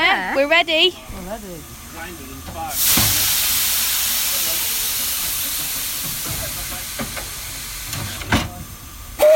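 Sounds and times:
speech: 0.4 - 3.3
steam hissing from a steam locomotive: 1.1 - 9.3
steam train whistle toot: 9.2 - 9.3.

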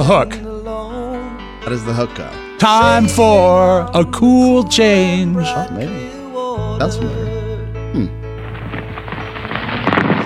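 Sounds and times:
speech: 0.0 - 0.4, 1.6 - 6.2, 6.8 - 7.2, 7.9 - 8.2
deep loud explosion rumble: 8.4 - 10.2
rubble clattering down: 8.4 - 10.2.

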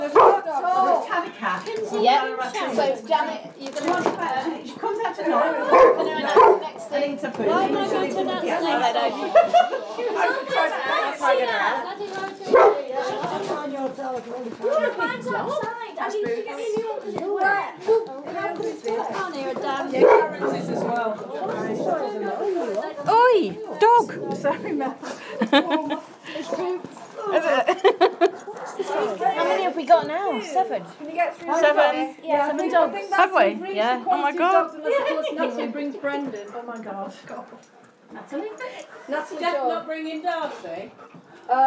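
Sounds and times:
speech: 1.2 - 28.1, 29.0 - 41.6
laughter: 7.5 - 11.5, 23.8 - 29.3, 34.8 - 35.7
several dogs barking and yipping: 12.5 - 12.9, 19.9 - 21.1, 28.0 - 29.1.

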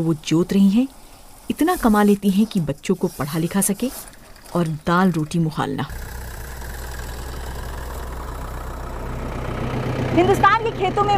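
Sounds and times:
speech: 0.0 - 6.1, 10.2 - 11.1
tractor engine idling in fields in India: 2.4 - 11.1.

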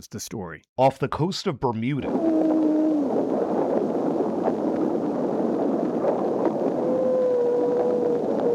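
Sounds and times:
speech: 0.0 - 2.6
hiss and crackle of an old recording: 2.1 - 8.5
humpback whale singing in a 1949 recording: 2.1 - 8.5
roar of underwater noise: 2.1 - 8.5.

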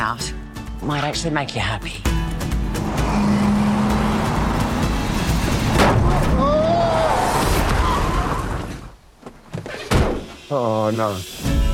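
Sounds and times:
speech: 0.0 - 3.4, 10.5 - 11.6
car engine: 2.1 - 6.4
road rumble: 2.1 - 9.2
whining tones: 2.4 - 8.9.

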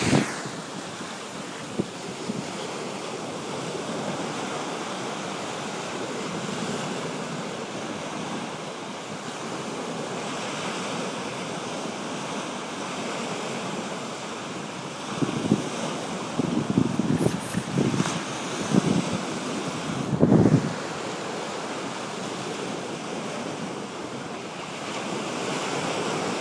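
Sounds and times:
wind buffeting: 0.0 - 5.0, 15.2 - 24.2
sea waves washing onto a shore: 0.0 - 26.3.

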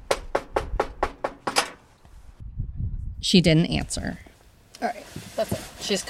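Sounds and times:
knocking on a door: 0.1 - 1.6
speech: 3.2 - 6.0.

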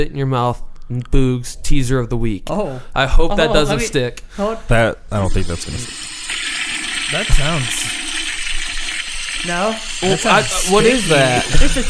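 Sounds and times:
speech: 0.0 - 6.2, 7.1 - 8.0, 9.4 - 11.8
toilet flushing: 5.2 - 11.8.

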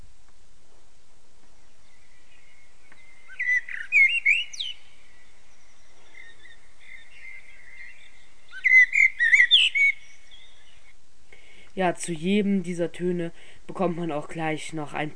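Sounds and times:
common blackbird singing fluty warbling phrases: 1.6 - 11.0
speech: 11.8 - 15.1.

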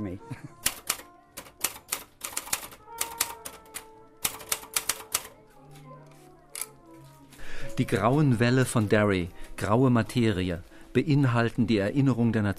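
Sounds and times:
speech: 0.1 - 0.4, 7.8 - 12.5
typewriter keys clacking: 0.6 - 5.4.

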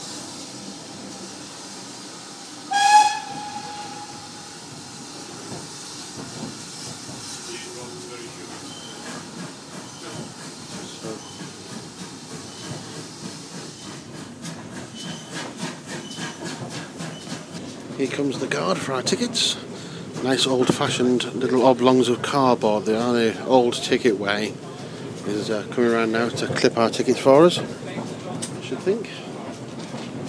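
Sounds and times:
steam hissing from a steam train: 0.0 - 18.3
moving steam train rumbling: 0.0 - 30.2
steam train whistle blast: 2.7 - 4.5
speech: 18.0 - 24.6, 25.3 - 27.8, 28.8 - 29.3.

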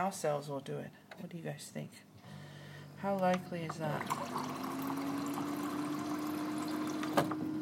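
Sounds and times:
speech: 0.0 - 2.1, 3.0 - 4.8, 7.2 - 7.5
water running steadily from a water dispenser: 3.6 - 7.4.

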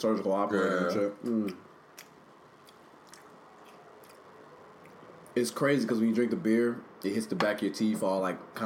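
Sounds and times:
speech: 0.0 - 1.7, 5.4 - 8.6
person chewing a bite of apple pie: 1.2 - 5.4.

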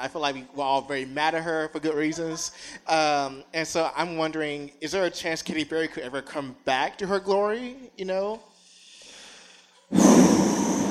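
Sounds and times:
speech: 0.0 - 8.5
deep breath drawn into a microphone: 8.5 - 10.8.

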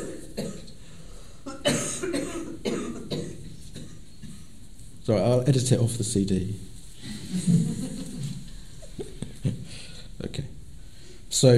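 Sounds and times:
person coughing: 0.0 - 0.7, 1.5 - 4.4
throat clearing: 0.0 - 0.7, 1.5 - 4.4
speech: 5.1 - 6.7, 7.3 - 8.0, 11.4 - 11.5
laughter: 7.0 - 9.7.

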